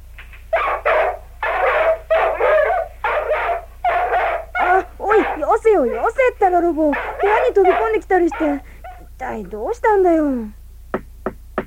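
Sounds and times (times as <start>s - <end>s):
dog barking frantically: 0.5s - 9.2s
speech: 5.8s - 10.6s.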